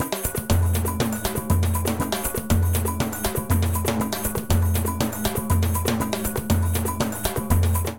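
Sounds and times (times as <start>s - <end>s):
samba Latin percussion: 0.0s - 7.9s.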